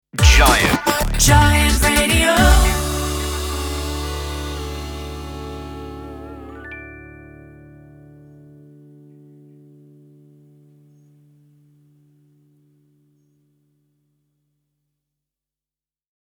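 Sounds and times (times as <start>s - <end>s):
sung jingle sting in D major: 0.2s - 8.0s.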